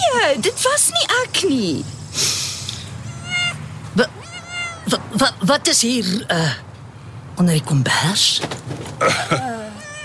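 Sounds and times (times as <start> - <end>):
speech: 0.2 - 2.3, 4.9 - 6.7, 7.4 - 9.5
cat meowing: 3.0 - 5.0, 9.5 - 10.0.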